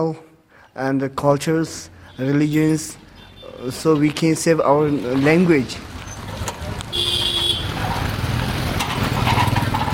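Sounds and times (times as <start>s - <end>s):
speech: 0.0s - 3.0s, 3.6s - 5.9s
dense rush-hour street traffic engines rumbling in Dharamsala: 0.0s - 9.9s
motorbikes in rush-hour traffic: 1.6s - 9.9s
car horn blaring in a steady tone: 6.9s - 7.8s.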